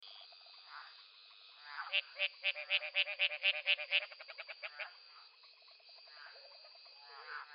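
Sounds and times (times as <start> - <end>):
Smilisca baudini tree frog of the Hylidae family: 0.0 - 7.5.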